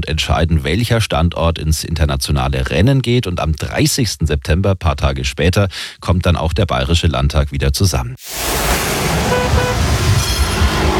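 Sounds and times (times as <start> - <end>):
speech: 0.1 - 9.5
thick constant rumble of traffic noise: 8.3 - 10.9
car horns honking in a traffic jam on Munich's Mittlerer Ring: 9.2 - 10.2.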